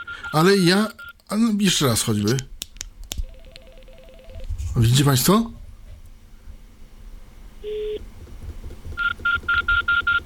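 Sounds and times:
telephone keypad dialing tones: 0.0s - 0.4s, 3.2s - 4.4s, 9.0s - 10.2s
speech: 0.3s - 2.5s, 4.8s - 5.6s.

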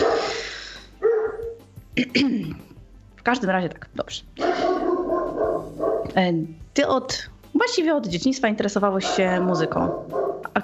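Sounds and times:
dog barking at a countryside home: 0.0s - 1.6s, 4.4s - 6.2s, 9.0s - 10.6s
speech: 2.0s - 4.7s, 6.1s - 10.6s.

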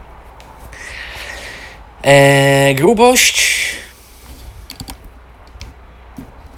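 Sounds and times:
speech: 2.0s - 3.8s
standard non-mechanical office computer keyboard clicks and taps: 4.7s - 5.7s.

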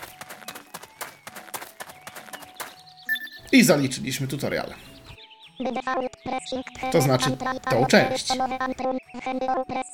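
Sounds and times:
video game character running footsteps: 0.0s - 3.1s
speech: 3.5s - 5.0s, 5.6s - 9.8s.

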